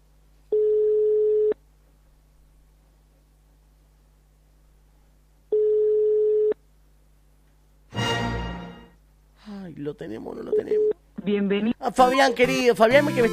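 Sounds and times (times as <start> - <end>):
unanswered phone ringback tone: 0.5 - 1.6, 5.5 - 6.6
speech: 9.8 - 13.3.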